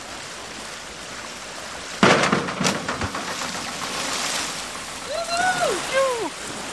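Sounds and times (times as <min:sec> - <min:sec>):
churning pool water: 0:00.0 - 0:06.7
body making a heavy cannonball splash into a swimming pool: 0:02.0 - 0:04.6.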